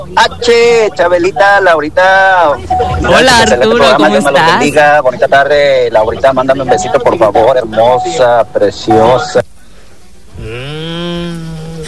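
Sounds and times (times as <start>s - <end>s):
speech: 0.0s - 9.5s
cow mooing: 10.4s - 11.8s.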